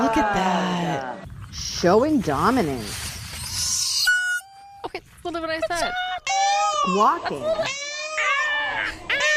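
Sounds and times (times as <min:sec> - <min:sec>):
speech: 0:00.2 - 0:00.7, 0:01.5 - 0:03.1, 0:06.9 - 0:07.8
peacock calling: 0:02.8 - 0:05.1, 0:05.8 - 0:09.3.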